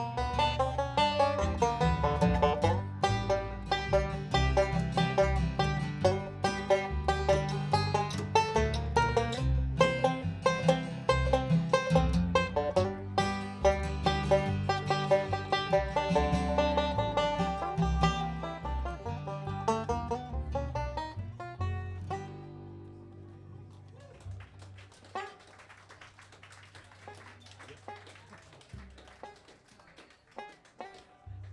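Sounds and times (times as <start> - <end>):
recorded blues song with dense instrumentation and driving rhythm: 0.0 - 23.6.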